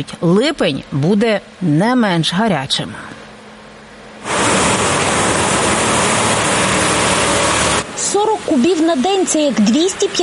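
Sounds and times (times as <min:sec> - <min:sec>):
speech: 0:00.0 - 0:03.1, 0:08.5 - 0:10.2
low water truck engine rumble: 0:04.2 - 0:08.8
water truck spraying water on street: 0:04.2 - 0:10.2.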